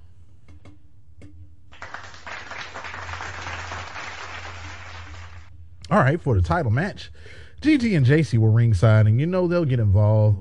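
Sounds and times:
round of applause, many hands clapping: 1.7 - 5.5
speech: 5.9 - 10.3.

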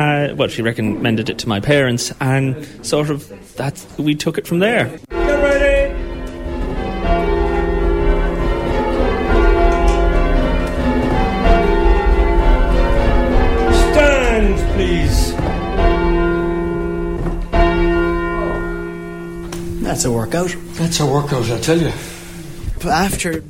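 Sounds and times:
speech: 0.0 - 5.2, 20.0 - 22.1, 22.8 - 23.4
peal of church bells ringing: 5.1 - 22.7.

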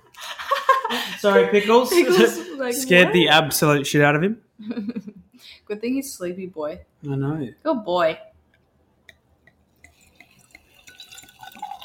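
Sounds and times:
laughter: 0.1 - 3.4
speech: 0.9 - 8.3
drink poured from a bottle into a glass: 9.5 - 11.8.

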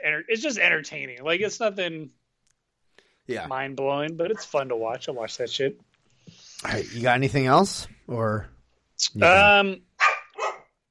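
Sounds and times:
speech: 0.0 - 2.2, 3.3 - 9.9
dog barking: 10.0 - 10.8.

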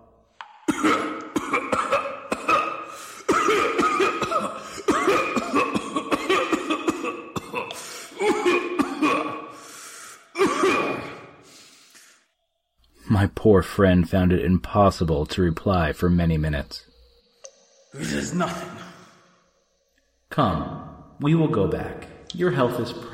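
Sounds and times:
person coughing in a nitre-covered cavern: 0.7 - 9.6, 10.3 - 11.4, 18.0 - 19.2
wheezing gasps and strained breaths: 2.8 - 3.3, 4.5 - 4.9, 7.7 - 8.3, 9.5 - 10.4, 11.2 - 12.4
speech: 13.4 - 16.9, 18.0 - 18.8, 20.4 - 23.1.

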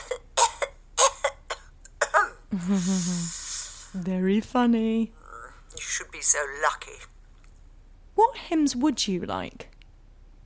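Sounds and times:
fit of short hacking coughs: 0.0 - 2.5
drawn-out wheezy vocal rasp: 2.5 - 4.0
speech: 2.5 - 5.2, 6.2 - 7.1, 8.2 - 9.7.

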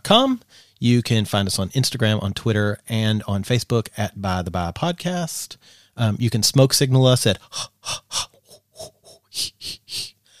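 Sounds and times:
speech: 0.1 - 10.1
person doing quick rhythmic Lamaze-style breathing: 0.5 - 0.8, 5.6 - 6.0, 7.4 - 10.3.

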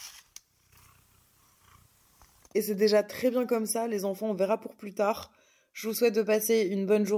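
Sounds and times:
cat purring while being petted: 0.5 - 2.5
speech: 2.6 - 7.1.

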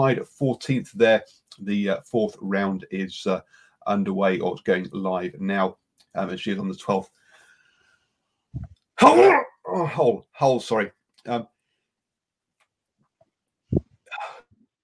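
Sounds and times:
speech: 0.0 - 7.2, 8.5 - 11.5
soft breath: 7.1 - 8.8
person sneezing: 9.0 - 9.9
short voiced groan-like exhalations: 14.1 - 14.6.

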